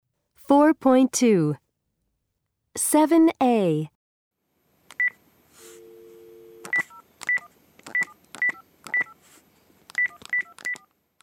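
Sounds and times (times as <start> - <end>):
speech: 0.5 - 1.6, 2.8 - 4.0
telephone keypad tones as a number is dialed: 6.0 - 9.2, 9.9 - 11.2.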